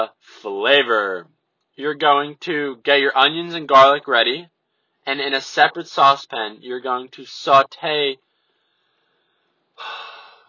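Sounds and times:
speech: 0.0s - 8.3s, 9.8s - 10.1s
person inhaling sharply: 8.3s - 10.4s.

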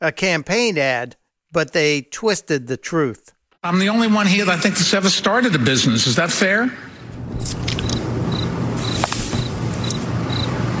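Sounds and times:
speech: 0.0s - 7.8s
cricket chirps: 7.7s - 10.7s.

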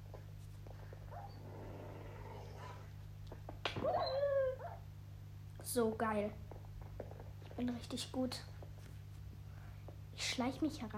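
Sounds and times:
low steady electronic hum: 0.0s - 10.9s
video game wolf yelping and whimpering: 1.1s - 2.9s, 3.8s - 4.9s
speech: 5.7s - 6.4s, 7.6s - 8.5s, 10.4s - 10.9s.

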